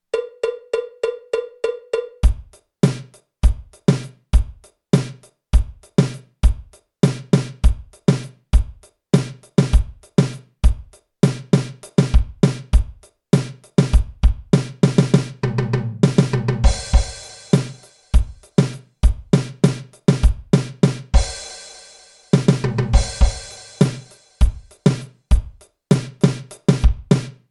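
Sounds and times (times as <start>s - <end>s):
drum kit solo in seven-eight time: 0.1s - 27.4s.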